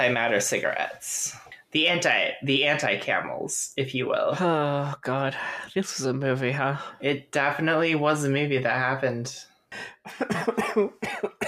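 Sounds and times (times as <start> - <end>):
speech: 0.0 - 11.4
breathing: 5.4 - 5.7, 9.6 - 10.1
person coughing in a fit: 10.0 - 11.4.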